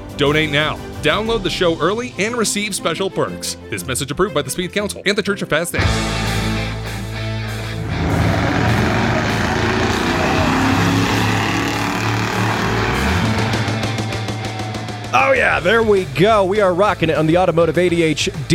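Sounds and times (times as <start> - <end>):
speech: 0.2 - 6.3, 15.1 - 18.5
1964 Mercury Breezeway muscle car engine roaring at a drag strip: 6.4 - 16.2.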